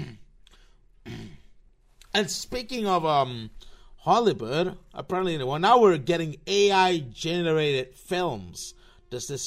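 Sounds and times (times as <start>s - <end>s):
person clearing throat: 0.0s - 0.4s, 1.0s - 1.6s
catch of breath: 0.0s - 1.4s
speech: 2.1s - 9.4s.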